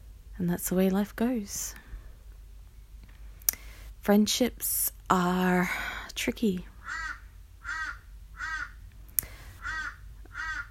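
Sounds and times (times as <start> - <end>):
low rumble: 0.0 - 10.6
speech: 0.4 - 1.8, 4.0 - 7.0
crow cawing: 6.8 - 8.8, 9.6 - 10.6.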